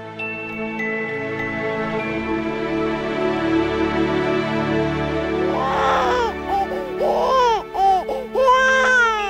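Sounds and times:
steady musical drone: 0.1s - 9.2s
newborn baby crying: 5.5s - 9.2s.

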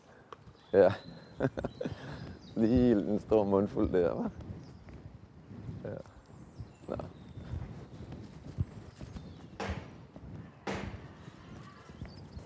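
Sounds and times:
speech: 0.7s - 2.0s, 2.6s - 4.4s, 6.9s - 7.2s
laughter: 1.4s - 2.3s
horse hooves clip-clopping: 2.6s - 12.4s.

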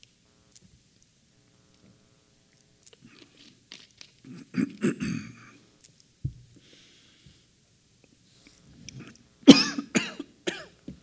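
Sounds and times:
person clearing throat: 4.3s - 5.6s, 8.9s - 10.8s
person coughing: 4.3s - 5.6s, 9.0s - 10.8s.

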